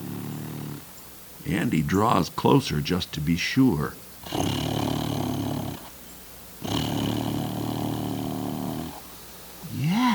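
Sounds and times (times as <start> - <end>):
animal snoring loudly: 0.0 - 1.0, 4.2 - 6.0, 6.6 - 9.1
speech: 1.4 - 4.8.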